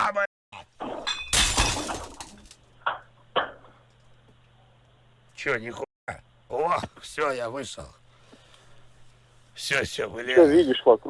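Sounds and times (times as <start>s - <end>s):
speech: 0.1s - 0.3s, 5.4s - 8.0s, 9.6s - 11.0s
glass shattering in a video game: 0.8s - 2.6s.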